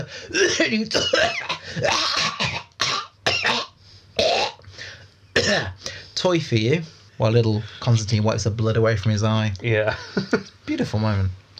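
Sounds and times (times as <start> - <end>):
speech: 0.0 - 2.7, 5.5 - 11.4
person acting out a harsh coughing fit: 0.0 - 4.6, 5.4 - 5.8.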